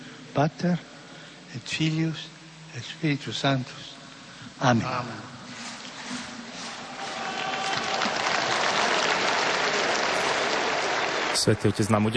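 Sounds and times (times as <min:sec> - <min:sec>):
speech: 0:00.4 - 0:00.9, 0:01.5 - 0:04.0, 0:04.6 - 0:05.3, 0:11.4 - 0:12.1
large outdoor crowd applauding in a square: 0:06.8 - 0:12.1.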